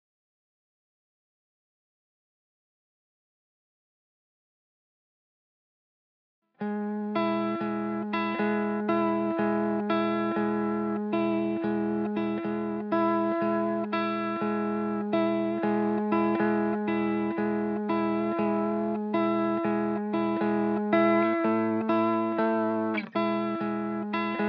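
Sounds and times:
guitar harmonies in E major at 120 BPM: 0:06.6 - 0:24.4.

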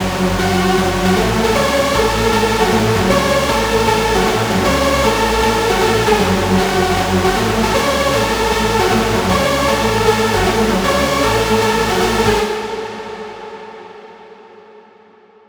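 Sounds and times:
lead melody music loop in F sharp minor at 155 BPM: 0:00.0 - 0:12.5.

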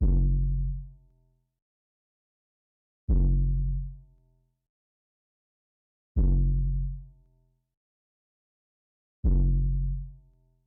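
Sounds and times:
bass in F minor: 0:00.0 - 0:01.3, 0:03.1 - 0:04.4, 0:06.2 - 0:07.4, 0:09.2 - 0:10.5.

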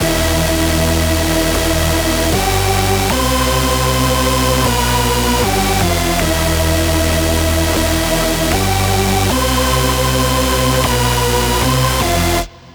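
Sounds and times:
lead loop in E minor: 0:00.0 - 0:12.5.

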